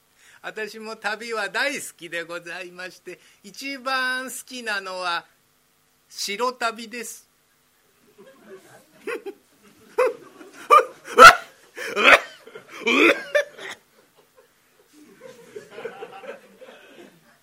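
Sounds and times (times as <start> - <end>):
speech: 0.4 - 5.4, 6.1 - 7.3, 11.9 - 12.2, 12.8 - 13.3
laughter: 8.1 - 17.4
old man choking and coughing: 10.7 - 13.8, 16.6 - 17.3.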